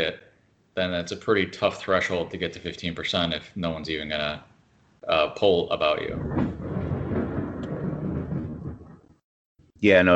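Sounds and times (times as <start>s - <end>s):
speech: 0.8s - 6.6s, 9.8s - 10.1s
deep continuous rumble of thunder: 5.2s - 9.2s.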